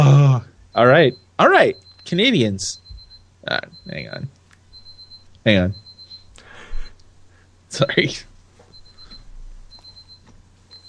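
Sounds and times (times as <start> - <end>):
electronic alarm high-pitched beeping: 0.7 - 7.0, 8.7 - 10.8
speech: 0.8 - 2.8, 3.4 - 4.4, 5.4 - 5.8, 7.7 - 8.3.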